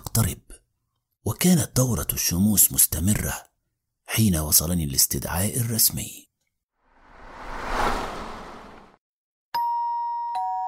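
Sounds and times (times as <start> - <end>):
speech: 0.2 - 0.5, 1.2 - 3.5, 4.1 - 6.2
soft whoosh: 6.9 - 9.0
doorbell chime strikes at an apartment door: 9.6 - 10.6.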